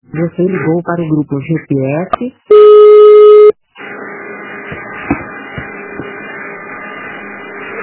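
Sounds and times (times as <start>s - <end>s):
speech: 0.2s - 2.8s
telephone line tone after a dropped call: 2.5s - 3.6s.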